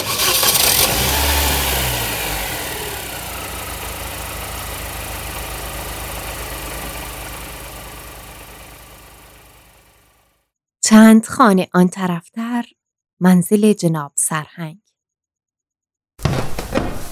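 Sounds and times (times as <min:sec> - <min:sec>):
car engine cranking, starting and idling: 0:00.0 - 0:10.4
speech: 0:10.9 - 0:14.8.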